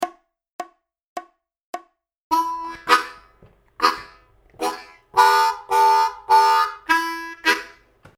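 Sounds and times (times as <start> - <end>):
solo harmonica playing chugging licks: 2.3 - 8.1.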